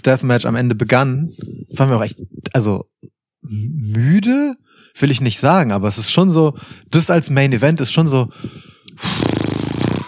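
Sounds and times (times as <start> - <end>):
speech: 0.0 - 9.6
short sharp breath: 6.6 - 6.9, 8.3 - 9.2
person snorting in imitation of a horse: 9.0 - 10.0.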